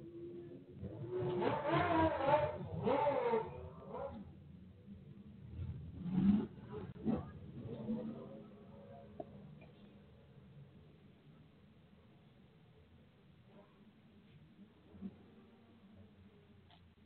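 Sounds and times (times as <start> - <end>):
loud motorcycle engine revving: 0.2 - 4.4, 5.6 - 8.6.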